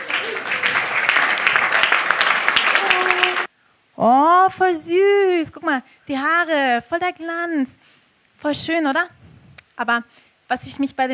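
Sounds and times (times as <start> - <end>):
loud dense applause from a crowd: 0.0 - 3.5
speech: 4.0 - 7.8, 8.4 - 9.2, 9.8 - 11.1.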